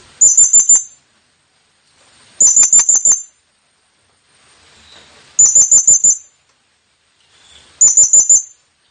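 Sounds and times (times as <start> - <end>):
blue-crowned hanging parrot lure call chirping: 0.2 - 1.0, 2.4 - 3.4, 5.4 - 6.3, 7.8 - 8.6.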